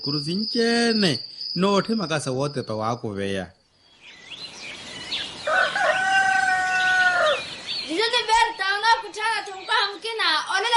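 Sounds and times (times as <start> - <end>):
speech: 0.0 - 3.6
high warbling bird chirps: 0.0 - 10.7
rooster crowing: 5.4 - 7.6.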